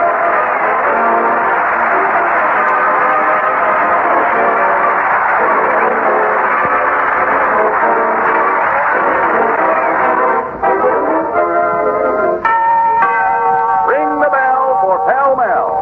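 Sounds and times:
bell chimes ringing in a cigarette advertisement: 0.0s - 15.8s
steady harmonic backdrop: 0.0s - 15.8s.

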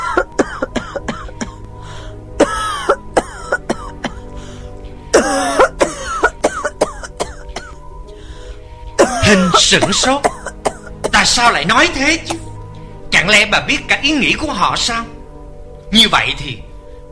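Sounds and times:
elderly woman's violent coughing fit: 0.0s - 1.6s, 2.4s - 4.3s, 5.1s - 7.8s, 9.0s - 11.6s
speech: 9.3s - 10.3s, 11.2s - 12.4s, 13.3s - 15.1s, 15.9s - 16.7s.

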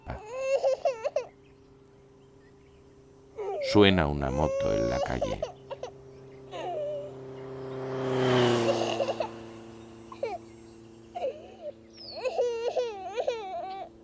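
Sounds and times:
young child crying: 0.0s - 1.4s, 3.4s - 7.1s, 8.6s - 9.4s, 10.1s - 10.4s, 11.1s - 14.0s
speech: 3.7s - 5.6s.

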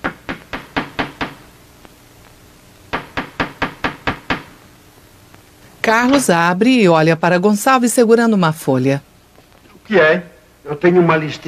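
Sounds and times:
knocking on a door in a hallway: 0.0s - 1.4s, 2.9s - 4.5s
speech: 5.9s - 9.1s, 9.9s - 11.4s.

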